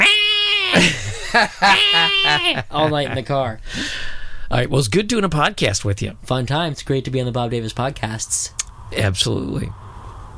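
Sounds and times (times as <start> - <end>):
cat meowing: 0.0 - 0.8
laughter: 0.7 - 3.4
speech: 0.8 - 9.8.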